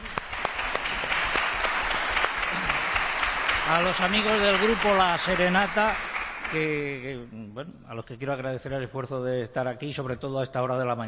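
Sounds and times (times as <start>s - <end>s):
audience applauding a musical group at a morning event: 0.0s - 7.1s
speech: 3.7s - 11.0s.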